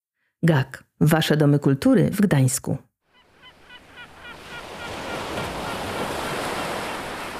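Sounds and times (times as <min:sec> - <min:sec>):
speech: 0:00.4 - 0:02.9
wind on a sandy beach on Sobieszewo Island in Gdańsk Poland: 0:03.0 - 0:07.3
bird calls: 0:03.1 - 0:07.3
sea surf on a sandy beach on Sobieszewo Island in Gdańsk Poland: 0:03.2 - 0:07.3.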